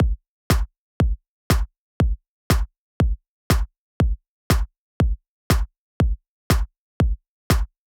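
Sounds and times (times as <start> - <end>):
kick drum: 0.0 - 7.9.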